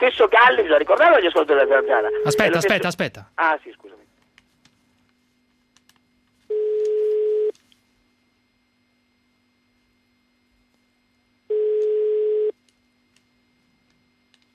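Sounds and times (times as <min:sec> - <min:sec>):
speech: 0:00.0 - 0:04.0
telephone ringing with a buzzy tone: 0:06.5 - 0:07.5, 0:11.5 - 0:12.5.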